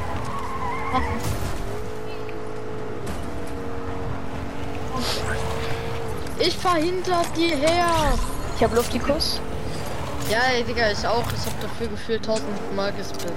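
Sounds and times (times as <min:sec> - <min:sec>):
video game car engine droning: 0:00.0 - 0:13.3
video game car tire skids: 0:00.0 - 0:13.3
speech: 0:00.9 - 0:01.6, 0:06.4 - 0:09.5, 0:10.3 - 0:13.3.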